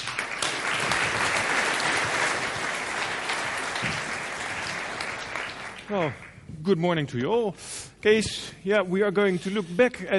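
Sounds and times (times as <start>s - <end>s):
sizable audience applauding: 0.0s - 6.4s
speech: 5.9s - 10.1s.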